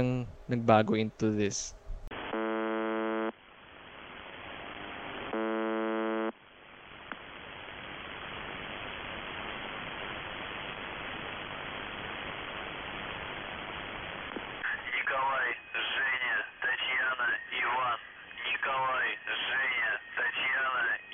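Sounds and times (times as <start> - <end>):
speech: 0.0 - 1.8
steady static hiss: 0.0 - 21.1
electronic buzzer buzzing: 2.2 - 3.3, 4.9 - 6.3.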